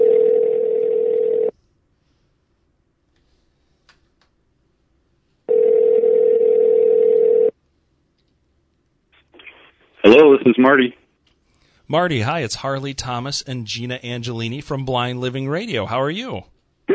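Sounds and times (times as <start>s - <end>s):
steady electronic telephone tone: 0.0s - 1.5s, 5.5s - 7.5s
speech: 10.5s - 11.0s, 11.9s - 16.9s.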